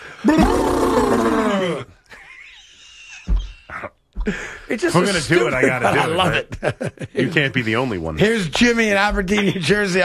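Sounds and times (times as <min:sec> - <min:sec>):
speech: 0:00.2 - 0:00.8, 0:04.2 - 0:10.0
person imitating an elephant trumpeting: 0:00.2 - 0:01.9
laughter: 0:00.2 - 0:07.7, 0:09.1 - 0:10.0.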